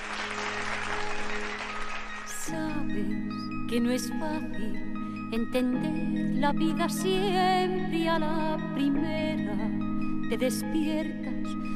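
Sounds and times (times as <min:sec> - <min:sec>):
applause: 0:00.0 - 0:02.5
song recording with sustained melodic instruments: 0:00.0 - 0:11.7
speech: 0:02.5 - 0:11.6.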